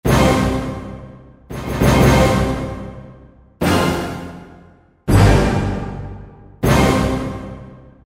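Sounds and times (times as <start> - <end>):
orchestral minor chord hit from a synthesizer expansion board: 0.1 - 7.7.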